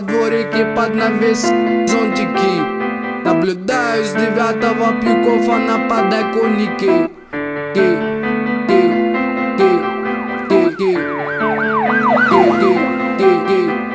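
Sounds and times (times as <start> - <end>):
speech: 0.0 - 8.1
sustained musical tones: 5.1 - 13.9
emergency vehicle sirens wailing: 8.8 - 13.9
rhythmic beat: 9.6 - 13.8.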